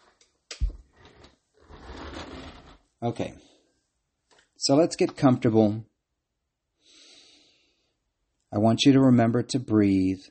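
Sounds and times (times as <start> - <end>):
office chair casters rolling across the floor: 0.6 - 2.9
speech: 3.0 - 3.5, 4.6 - 5.9, 8.5 - 10.3.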